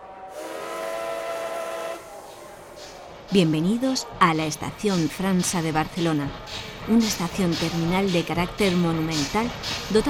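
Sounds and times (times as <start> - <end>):
train whistle as a train departs a Barcelona terminus station: 0.0 - 2.4
speech: 3.3 - 10.0.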